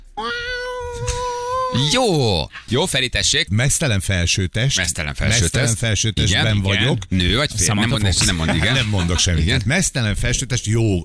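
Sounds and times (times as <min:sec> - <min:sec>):
faint noise: 0:00.0 - 0:11.0
drawn-out cat meow sound effect: 0:00.1 - 0:02.3
speech: 0:01.8 - 0:11.0
laughter: 0:07.8 - 0:09.6.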